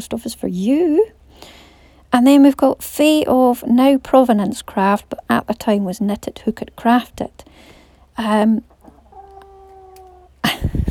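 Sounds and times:
speech: 0.0 - 8.7
chicken clucking: 8.6 - 10.4.

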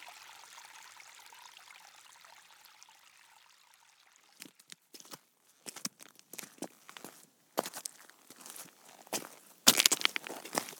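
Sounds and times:
footsteps walking through woods on undergrowth: 4.4 - 10.7.

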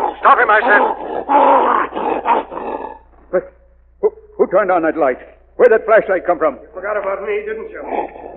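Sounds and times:
pet wolf yelping: 0.0 - 3.1
pet wolf growling: 0.0 - 3.2, 7.8 - 8.3
speech: 0.2 - 8.3.

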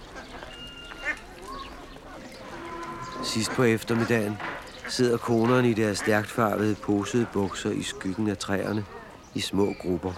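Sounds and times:
birds: 0.0 - 10.1
ducks quacking in muddy water holes in a farmyard: 2.4 - 8.0
speech: 3.2 - 10.1.

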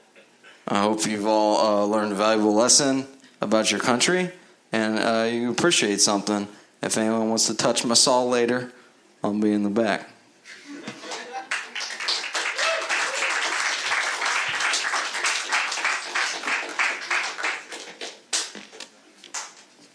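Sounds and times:
speech: 0.7 - 10.2
audience applauding: 11.0 - 18.7.

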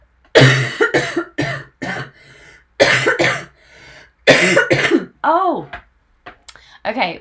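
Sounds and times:
person coughing harshly: 0.3 - 2.2, 2.8 - 3.6, 4.2 - 5.2
wheezy breaths: 2.1 - 2.8, 3.5 - 4.2
speech: 6.9 - 7.1.

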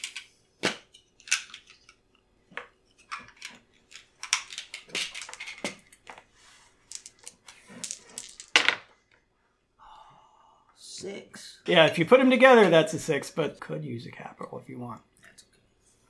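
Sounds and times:
six-sided dice rattling across a hard surface: 3.1 - 8.9
speech: 11.1 - 15.1.

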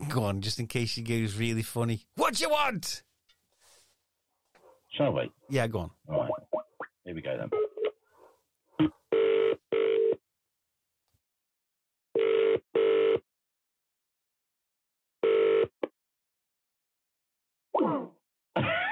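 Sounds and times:
speech: 0.1 - 3.1, 5.0 - 7.7, 8.8 - 10.2, 17.8 - 18.8
outgoing telephone call double-burst ringing tone heard through the line: 9.1 - 10.2, 12.2 - 13.2, 15.2 - 15.7.

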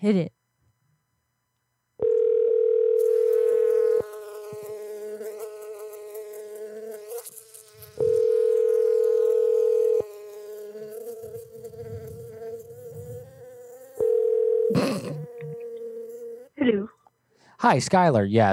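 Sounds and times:
speech: 0.0 - 0.4, 17.6 - 18.5
bees buzzing: 3.0 - 16.6.

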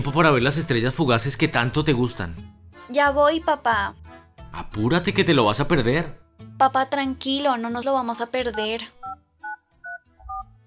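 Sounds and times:
speech: 0.0 - 9.2
cell phone keypad tones: 8.4 - 10.6.

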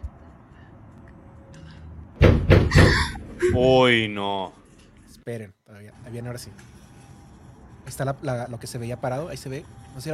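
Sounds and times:
door banging loudly: 2.2 - 3.1
speech: 2.8 - 4.6, 5.3 - 6.8, 7.9 - 10.1.

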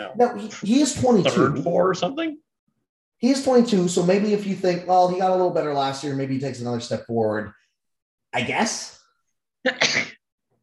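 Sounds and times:
speech: 0.0 - 2.5, 3.2 - 7.6, 8.3 - 9.0, 9.6 - 10.2
person sneezing: 9.7 - 10.2.

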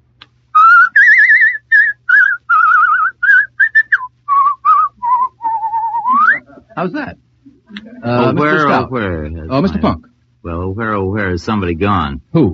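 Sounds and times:
person whistling a lively tune with vibrato: 0.6 - 6.5
speech: 6.8 - 7.2, 8.0 - 12.5.

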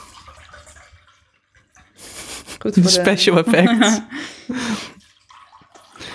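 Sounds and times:
wine being poured into a glass in a living room: 0.0 - 1.3, 2.8 - 6.1
speech: 2.6 - 4.9
laughter: 3.0 - 4.9.

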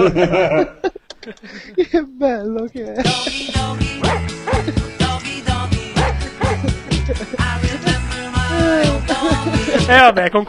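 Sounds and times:
laughter: 0.0 - 2.0, 2.8 - 10.2
speech: 0.0 - 5.0, 8.6 - 10.4
dog barking with short sharp yips: 4.0 - 4.7, 6.0 - 6.7.

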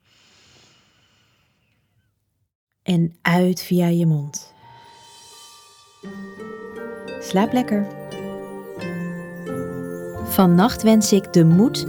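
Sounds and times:
deep inhale through the nose: 0.0 - 1.7
speech: 2.9 - 4.6, 7.2 - 8.0, 10.3 - 11.8.

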